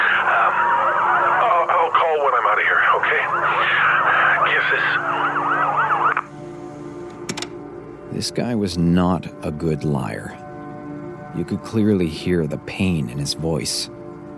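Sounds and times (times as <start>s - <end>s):
rescue crew sirens wailing after an earthquake: 0.0s - 6.3s
speech: 8.2s - 10.4s, 11.4s - 14.0s.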